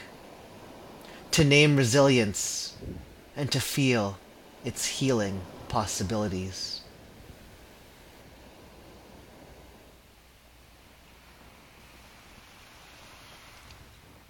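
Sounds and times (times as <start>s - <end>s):
ocean surf crashing on sand: 0.0s - 14.2s
speech: 1.4s - 6.8s.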